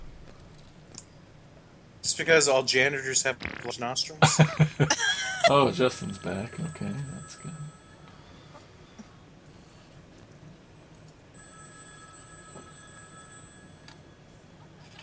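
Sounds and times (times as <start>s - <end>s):
speech: 2.1s - 7.8s
laughter: 4.2s - 6.1s
payphone bell ringing with a metallic trill: 5.0s - 8.5s, 11.3s - 15.0s.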